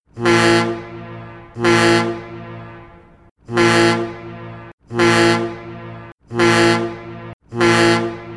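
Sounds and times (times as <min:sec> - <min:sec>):
train fog horn: 0:00.2 - 0:08.3.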